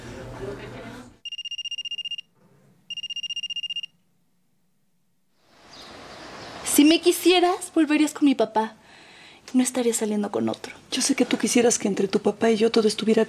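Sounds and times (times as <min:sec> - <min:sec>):
speech: 0:00.4 - 0:01.0, 0:06.8 - 0:08.8, 0:09.5 - 0:13.2
telephone ringing with electronic trilling bursts: 0:01.2 - 0:02.3, 0:02.9 - 0:04.0.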